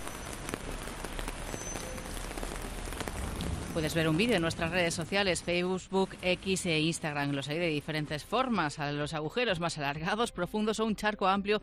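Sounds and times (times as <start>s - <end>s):
steady rain pattering on pavement: 0.0s - 7.5s
speech: 3.8s - 11.6s.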